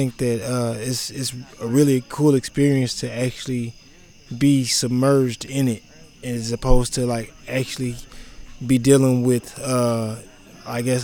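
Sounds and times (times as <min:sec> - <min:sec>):
crickets chirping on the prairie: 0:00.0 - 0:11.0
speech: 0:00.0 - 0:11.0.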